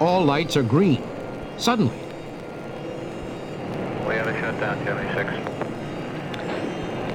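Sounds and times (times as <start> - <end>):
speech: 0.0 - 2.0, 4.5 - 5.6
rocket engines rumbling at ignition on the launch pad: 0.0 - 7.1
brief radio-like voice: 4.0 - 5.5.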